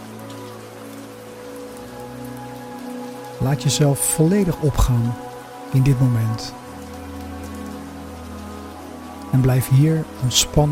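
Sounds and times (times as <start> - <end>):
steady rain on the roof of a small house in the mountains: 0.0 - 10.7
speech: 3.4 - 6.6, 9.3 - 10.7.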